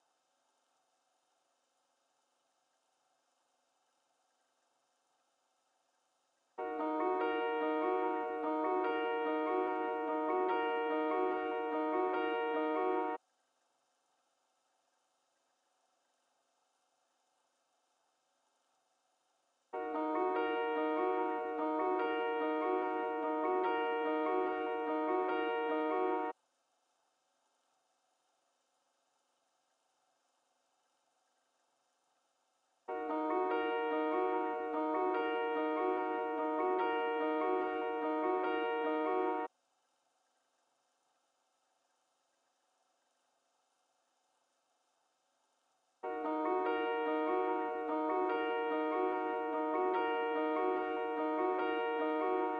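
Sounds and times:
146 BPM D sharp minor piano trap melody loop: 6.6 - 13.2, 19.8 - 26.4, 32.9 - 39.5, 46.0 - 52.5.

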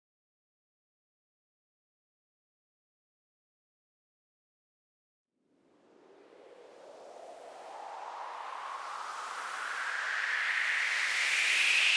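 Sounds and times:
rising sweep: 5.7 - 11.9.

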